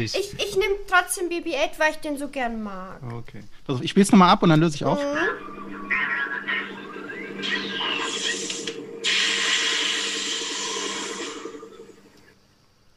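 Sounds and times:
speech: 0.0 - 6.0
steady low hum: 4.8 - 12.5
electronic warbling tones of a sci-fi probe droid: 5.0 - 12.2
mechanical chirps of a sci-fi probe droid: 5.3 - 12.2
loud hissing crackling burst: 6.6 - 12.3.

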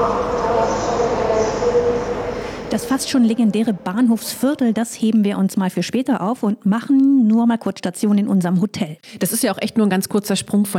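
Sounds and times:
indistinct crowd murmur in a main railway station: 0.0 - 3.8
main railway station hall and rail noise in Frankfurt: 0.0 - 4.8
speech: 2.7 - 10.7.

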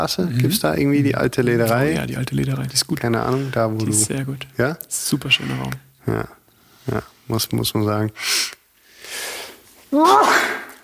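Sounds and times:
speech: 0.0 - 9.2, 9.9 - 10.6
forceful sneeze after a sharp breathy intake: 10.0 - 10.8.

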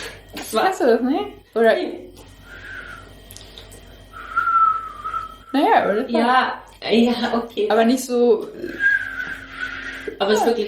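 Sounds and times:
speech: 0.5 - 2.3, 5.5 - 8.9, 10.2 - 10.6
person whistling breathy wavering notes: 2.5 - 3.1, 4.1 - 5.6, 8.7 - 10.2.

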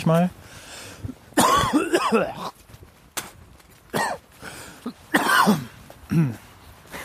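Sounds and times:
speech: 0.0 - 0.4, 2.1 - 2.6, 5.5 - 6.4
harsh hacking coughs: 1.4 - 2.6, 3.9 - 4.2, 4.8 - 6.4.

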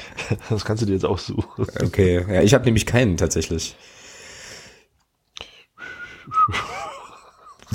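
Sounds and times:
speech: 0.3 - 4.0
person whistling breathy and airy: 5.8 - 6.7
laughter: 6.4 - 7.7.

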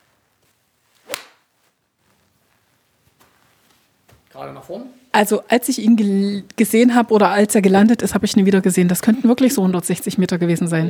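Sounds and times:
quiet shuffling footsteps: 0.0 - 4.5
faint rustling: 0.0 - 4.7
golf iron strike off the ground on a course: 1.1 - 1.4
speech: 4.4 - 10.8.

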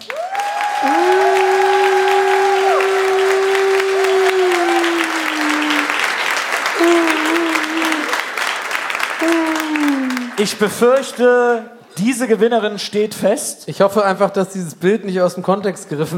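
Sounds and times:
people whooping and cheering: 0.0 - 10.5
crowd applauding: 0.0 - 11.5
speech: 10.4 - 16.1.

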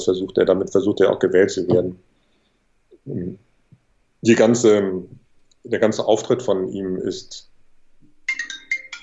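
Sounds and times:
speech: 0.0 - 2.1, 3.0 - 3.5, 4.2 - 7.5
mobile phone ringtone with bright tonal electronic notes: 8.3 - 9.0.

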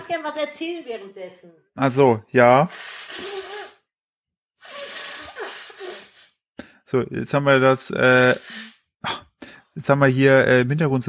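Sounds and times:
speech: 0.0 - 3.3, 6.9 - 9.2, 9.8 - 11.0
nose blowing: 2.6 - 3.9, 4.6 - 6.4, 8.0 - 8.8.

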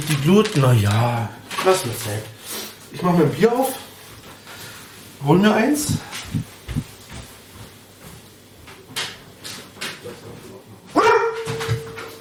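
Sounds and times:
speech: 0.1 - 3.9, 5.2 - 6.9
faint low thumps: 5.8 - 6.9
pet dog barking: 11.0 - 11.9.

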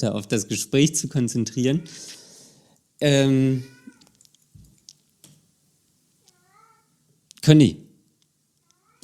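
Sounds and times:
speech: 0.0 - 2.2, 3.0 - 3.8, 7.4 - 7.8
faint soft noises: 1.5 - 9.0
hungry cat meowing: 3.6 - 4.2, 6.2 - 6.9.

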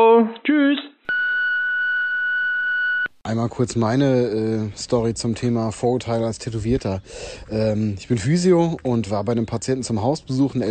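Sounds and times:
long steady electronic voicemail beep: 1.1 - 3.1
speech: 3.3 - 10.6.

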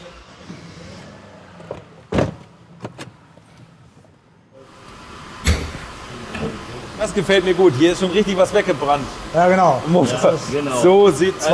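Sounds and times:
classic car engine rumbling while driven outside: 0.0 - 11.5
mechanical clunks and knocks: 5.4 - 6.6
speech: 7.0 - 11.5.

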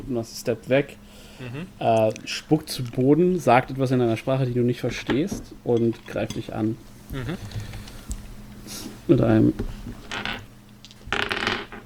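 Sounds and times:
speech: 0.1 - 7.8, 8.7 - 10.0
dice rolled on a table during a tabletop role-playing game: 10.0 - 11.8.

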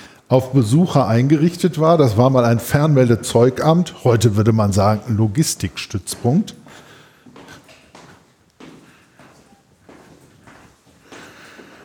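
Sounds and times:
speech: 0.3 - 6.8
footsteps climbing a narrow steep staircase in a former telecommunications depot: 4.2 - 11.8.

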